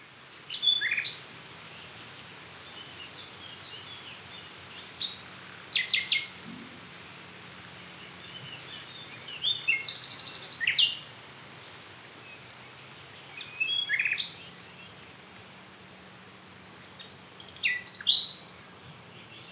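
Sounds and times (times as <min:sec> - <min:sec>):
common nightingale Luscinia megarhynchos singing: 0:04.8 - 0:06.4, 0:08.1 - 0:11.1, 0:13.3 - 0:14.9, 0:17.0 - 0:18.7.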